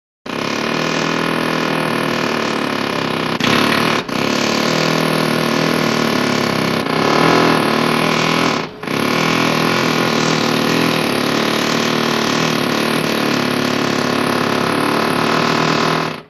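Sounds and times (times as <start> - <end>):
pneumatic chisel chiselling: 0.3 - 16.2.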